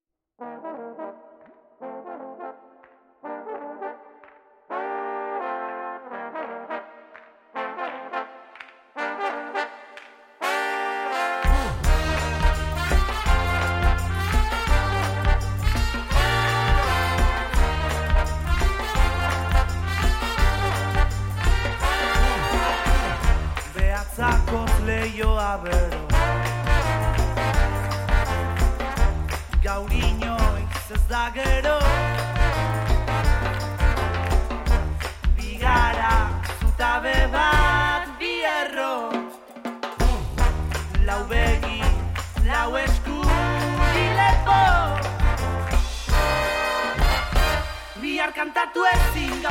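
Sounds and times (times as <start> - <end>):
brass band playing: 0.4 - 49.4.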